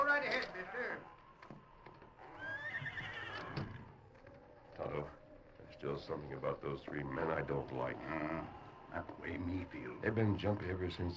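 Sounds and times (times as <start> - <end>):
speech: 0.4 - 1.2, 5.8 - 11.1
horse whinnying in a barn: 2.2 - 3.9.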